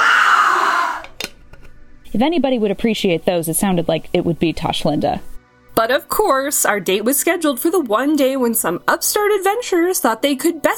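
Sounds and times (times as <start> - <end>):
person screaming: 0.0 - 1.1
speech: 2.1 - 10.7.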